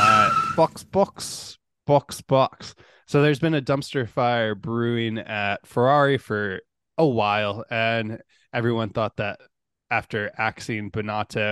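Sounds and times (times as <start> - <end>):
car tires skidding under braking: 0.0 - 0.7
short vocal bursts: 0.0 - 0.7
speech: 0.6 - 11.5.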